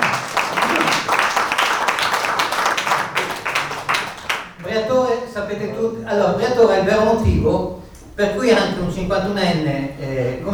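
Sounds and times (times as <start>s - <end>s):
comedy show audience applauding: 0.0s - 4.7s
speech: 5.5s - 10.5s.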